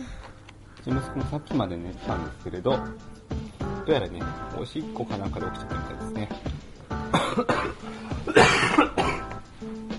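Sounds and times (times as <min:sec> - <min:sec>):
speech: 0:00.8 - 0:03.2, 0:03.9 - 0:06.6, 0:07.3 - 0:08.9
adult coughing: 0:07.0 - 0:09.4.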